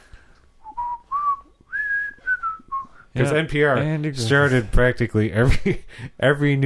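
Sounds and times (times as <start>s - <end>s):
person whistling a familiar TV theme tune: 0.6s - 3.0s
speech: 3.1s - 6.6s.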